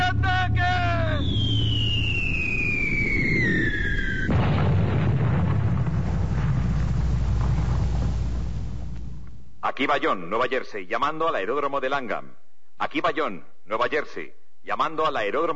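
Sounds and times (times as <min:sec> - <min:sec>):
wall-of-fire explosion in a wartime bombing raid: 0:00.0 - 0:09.3
high whistling tone sliding downward in a wartime bombing raid: 0:00.4 - 0:04.3
speech: 0:09.8 - 0:15.5.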